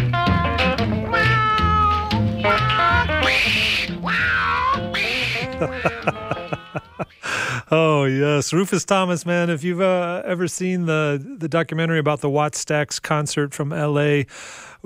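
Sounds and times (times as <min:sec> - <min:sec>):
bouncy band groove with horns and a driving beat: 0:00.0 - 0:06.6
cat meows in a song: 0:00.6 - 0:06.1
laughter: 0:05.1 - 0:07.2
speech: 0:05.6 - 0:07.0, 0:07.7 - 0:14.8.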